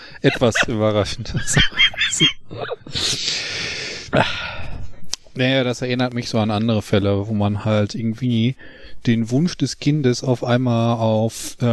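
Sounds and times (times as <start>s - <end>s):
laughter: 0.2s - 2.9s
speech: 0.2s - 3.3s, 5.4s - 11.7s
sharp inhales: 2.9s - 4.9s.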